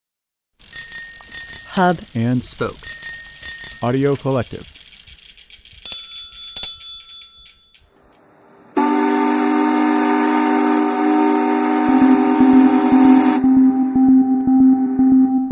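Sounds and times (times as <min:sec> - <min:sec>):
bright ringing chimes: 0:00.7 - 0:02.2, 0:02.8 - 0:04.6, 0:05.8 - 0:08.0
rhythmic mechanical thumping: 0:01.4 - 0:05.9, 0:11.9 - 0:15.3
speech: 0:01.8 - 0:03.0, 0:03.8 - 0:04.8
old factory steam whistle in Corning, upstate New York: 0:08.8 - 0:13.9.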